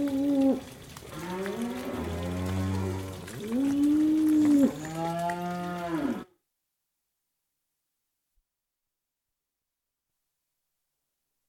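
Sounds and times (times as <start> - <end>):
cattle mooing while walking down a muddy lane: 1.1 - 6.3.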